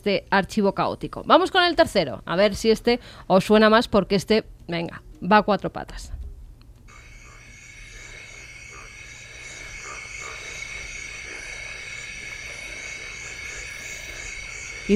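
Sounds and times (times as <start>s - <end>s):
speech: 0.0s - 6.2s
frog or toad croaking: 6.9s - 14.9s
steady droning tone: 6.9s - 14.9s.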